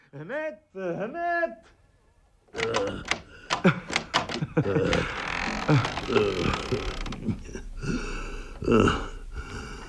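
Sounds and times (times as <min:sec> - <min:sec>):
speech: 0:00.1 - 0:01.8, 0:02.5 - 0:04.0, 0:04.6 - 0:09.1
metallic lock being worked: 0:02.5 - 0:05.0
door creaking open: 0:02.5 - 0:07.4.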